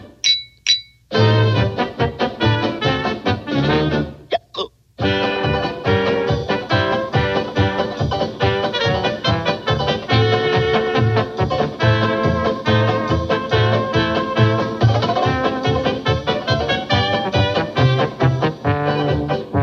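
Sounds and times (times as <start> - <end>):
beer steins and wine glasses clinking: 0.2 - 1.1
loud brassy band playing: 1.1 - 4.1, 5.0 - 19.6.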